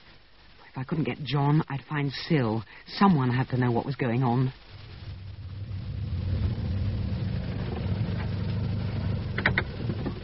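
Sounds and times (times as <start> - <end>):
speech: 0.8 - 4.6
car engine and road noise while driving: 4.6 - 10.2.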